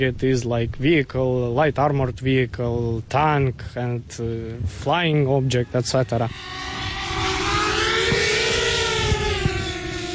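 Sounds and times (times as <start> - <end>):
speech: 0.0 - 6.8
combat drone motor and propellers spinning up: 6.1 - 10.1.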